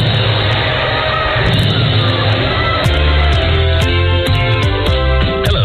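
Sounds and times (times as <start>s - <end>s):
large crowd of fans cheering in a gym at a basketball game: 0.0s - 5.5s
scattered shouts and yells from basketball fans: 0.2s - 4.1s.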